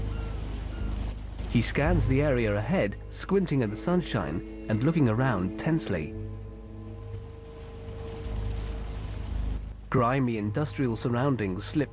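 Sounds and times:
motor yacht engine droning while cruising through rundown industrial docks: 0.0s - 11.9s
speech: 1.5s - 6.2s, 9.9s - 11.9s.

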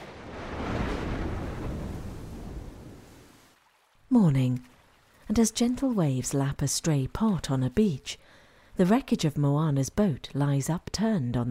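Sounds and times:
thunder from lightning striking the ocean during a violent storm at sea: 0.0s - 3.3s
speech: 4.1s - 4.7s, 5.3s - 11.5s.

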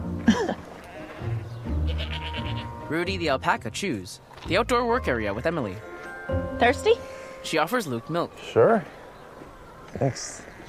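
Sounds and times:
steady noise on a farm: 0.0s - 10.6s
goat bleating on a farm: 0.8s - 2.9s
speech: 2.9s - 9.0s, 10.0s - 10.6s.

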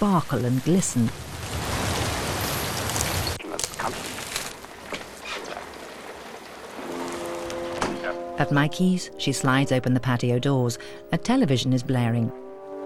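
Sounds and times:
speech: 0.0s - 1.3s, 8.4s - 12.4s
heavy rain beating down by a footbridge over a small river at the forest's edge: 0.0s - 8.4s.

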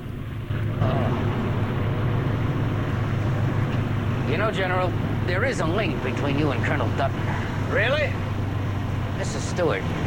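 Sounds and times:
motorboat engine droning: 0.0s - 10.0s
speech: 4.4s - 8.3s, 9.2s - 10.0s.

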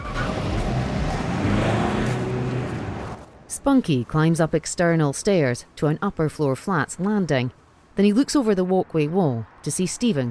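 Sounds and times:
black car driving away from a housing estate: 0.0s - 3.5s
broadband road noise: 0.0s - 10.2s
speech: 3.6s - 10.2s.

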